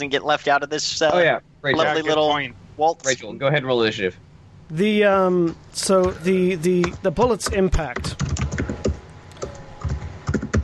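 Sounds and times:
speech: 0.0s - 8.4s
typing on a computer keyboard: 8.0s - 10.6s.

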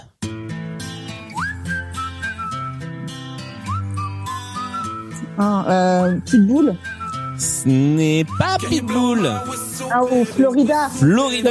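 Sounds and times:
bright whistled melody in a pop song: 1.1s - 10.2s
speech: 5.4s - 11.4s
pop song with beats, bass and layered instruments: 7.3s - 11.4s.

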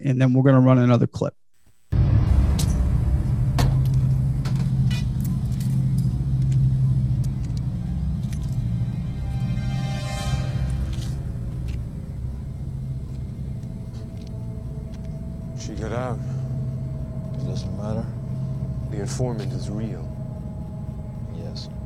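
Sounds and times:
speech: 0.0s - 1.4s, 19.2s - 20.1s
heavy truck engine rumbling while accelerating: 2.0s - 21.8s.

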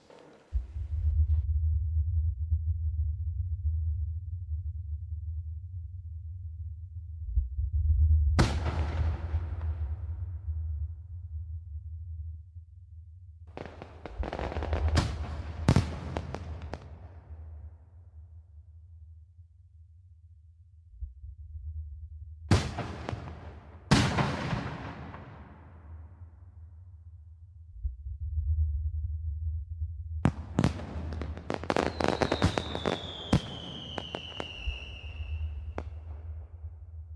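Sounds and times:
fireworks explosions: 0.0s - 1.1s, 8.4s - 10.0s, 13.5s - 17.6s, 22.5s - 26.0s, 30.2s - 36.7s
deep continuous low rumble: 0.5s - 15.7s, 16.8s - 23.2s, 25.9s - 31.5s.

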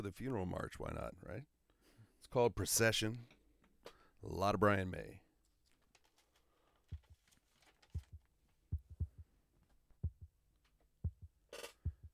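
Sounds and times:
speech: 0.0s - 1.6s, 2.2s - 3.4s, 4.2s - 5.2s
slow steady heartbeat thudding in low double pulses: 6.9s - 7.2s, 7.9s - 9.4s, 10.0s - 10.4s, 11.0s - 12.1s.

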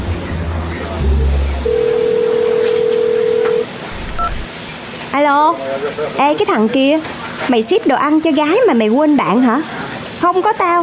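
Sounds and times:
dense noise: 0.0s - 10.8s
telephone line tone: 1.6s - 4.5s
keypad beep: 1.7s - 4.5s
speech: 5.3s - 10.8s.

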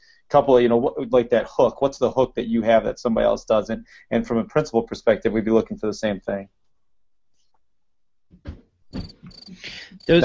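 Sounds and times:
speech: 0.3s - 6.6s, 9.9s - 10.2s
stock cricket sound effect chirping during an online meeting: 8.9s - 10.2s.

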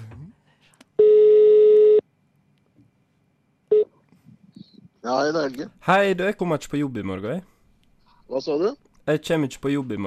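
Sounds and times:
electronic phone ringback tone of an outgoing call: 1.0s - 2.0s
speech: 5.1s - 7.5s, 8.3s - 10.0s.

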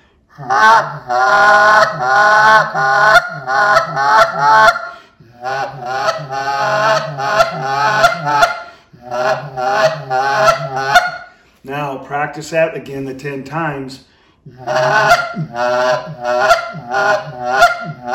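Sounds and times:
speech: 0.4s - 4.8s, 12.3s - 18.1s
goose call blown in honking clucks with throaty murmur: 0.4s - 11.3s, 14.6s - 18.1s.

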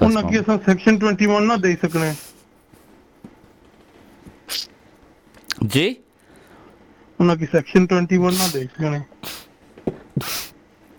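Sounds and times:
speech: 0.1s - 2.3s, 4.5s - 4.7s, 5.6s - 6.0s, 7.2s - 10.5s
sneeze: 4.5s - 4.7s, 9.2s - 9.5s, 10.2s - 10.6s.

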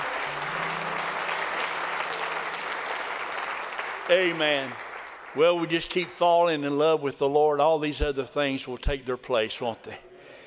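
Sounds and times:
room full of people applauding: 0.0s - 6.2s
speech: 4.1s - 10.1s.

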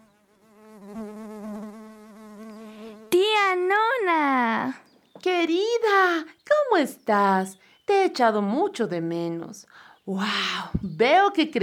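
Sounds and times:
bee buzzing: 0.0s - 3.6s
speech: 5.2s - 11.6s.

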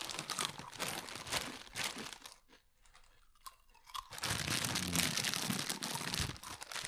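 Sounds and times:
loud crunching of dry corn chips: 0.0s - 6.8s.

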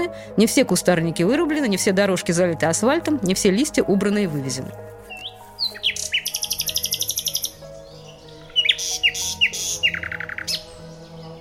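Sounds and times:
speech: 0.0s - 5.1s
nightingale singing trilled phrases: 5.0s - 11.3s.

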